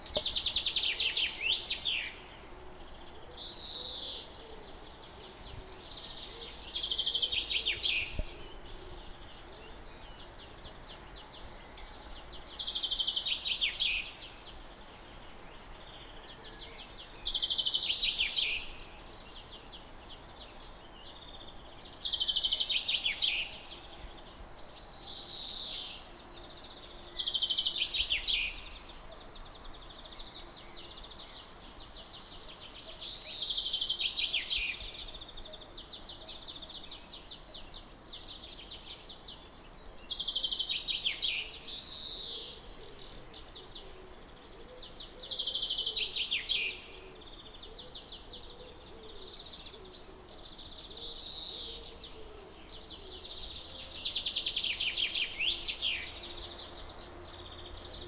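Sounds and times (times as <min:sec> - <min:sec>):
birds singing on a summer morning by a back garden: 0:00.0 - 0:58.0.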